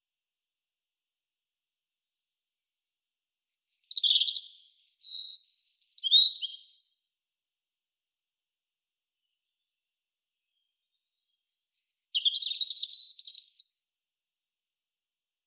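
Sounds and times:
European robin Erithacus rubecula singing: 3.5s - 7.0s, 10.4s - 14.0s.

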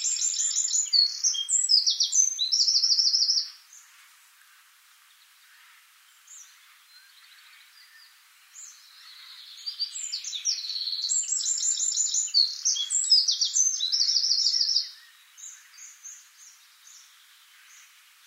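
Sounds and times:
Eurasian wren Troglodytes troglodytes singing high rapid trills and chattering notes: 0.0s - 3.6s, 7.9s - 18.2s.

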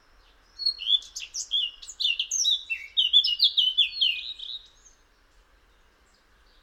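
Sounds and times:
Eurasian blackcap Sylvia atricapilla warbling song: 0.2s - 5.0s.

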